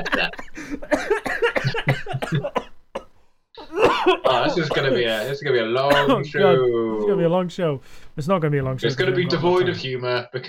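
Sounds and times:
speech: 0.0s - 2.6s, 4.0s - 10.4s
harsh raspy coughing fit: 0.8s - 5.3s, 5.9s - 6.3s.

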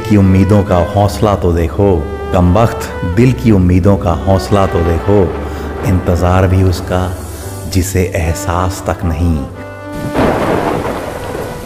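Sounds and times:
speech: 0.1s - 10.4s
deep rumble of thunder: 1.4s - 8.8s, 9.5s - 11.6s
heavy rain in a thunderstorm: 4.0s - 8.4s, 9.8s - 11.6s.

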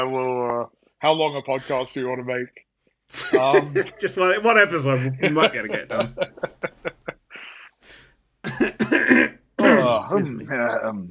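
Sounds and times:
speech: 1.0s - 6.7s, 10.2s - 11.0s
laughter: 3.1s - 7.7s
man coughing: 8.4s - 10.0s.

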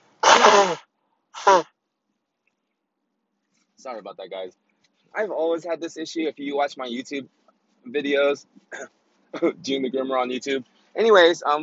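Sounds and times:
person blowing nose with a loud honking blow: 0.2s - 1.7s
speech: 0.6s - 1.7s, 3.8s - 11.6s.

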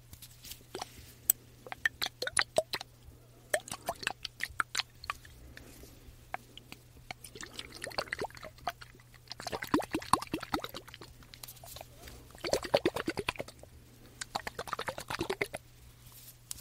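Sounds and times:
diffuser and body mist bottles shaking: 0.7s - 1.0s, 1.7s - 2.9s, 3.5s - 5.8s, 6.3s - 15.6s.

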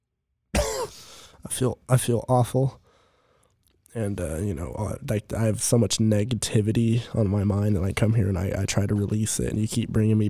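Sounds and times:
harsh raspy cough: 0.5s - 1.3s
speech: 0.8s - 2.8s, 3.9s - 10.2s.

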